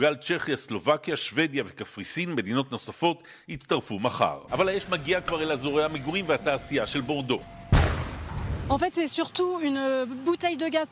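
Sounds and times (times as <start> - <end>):
speech: 0.0 - 7.6, 8.7 - 10.9
gas canister exploding during a wildfire near Bordeaux, France: 7.7 - 8.8.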